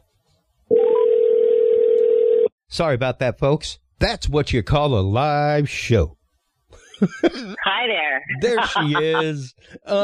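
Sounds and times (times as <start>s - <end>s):
steady electronic telephone line tone while calling a dropped caller back: 0.7s - 2.5s
speech: 2.7s - 6.2s, 7.0s - 10.0s
laughter: 6.8s - 7.6s, 8.3s - 9.5s.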